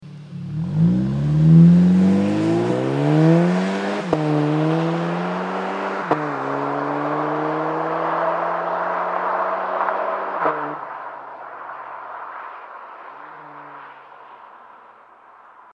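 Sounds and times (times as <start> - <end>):
Golf VII GTI with catback exhaust system pulling away: 0.0 - 12.3.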